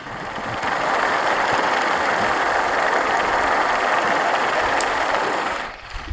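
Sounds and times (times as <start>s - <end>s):
faint rhythmic ticking underwater: 0.0s - 6.1s
underwater drone of fishing boat, fast boat and cargo ship engines via hydrophone: 0.0s - 6.1s.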